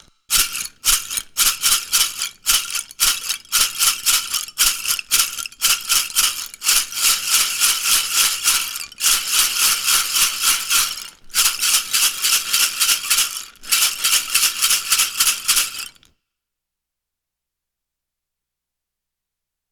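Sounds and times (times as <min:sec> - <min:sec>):
guiro: 0:00.3 - 0:16.0.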